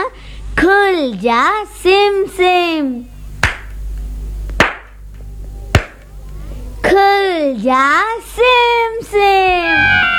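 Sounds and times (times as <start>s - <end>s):
speech: 0.6s - 3.1s, 6.9s - 10.1s
sharp hand claps: 3.4s - 3.8s, 4.5s - 5.2s, 5.8s - 6.1s.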